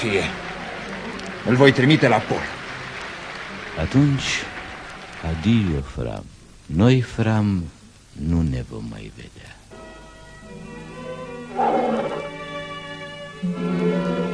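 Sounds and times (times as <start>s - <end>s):
speech: 0.0s - 0.5s, 1.4s - 2.6s, 3.8s - 4.5s, 5.2s - 9.6s, 13.4s - 14.2s
circus tiger roaring at night: 11.5s - 12.3s.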